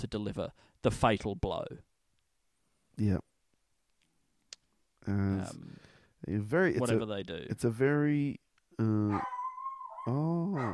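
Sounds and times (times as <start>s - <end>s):
speech: 0.0s - 1.9s, 3.0s - 3.3s, 5.0s - 9.4s, 10.0s - 10.7s
dog howling and whimpering: 9.1s - 10.7s.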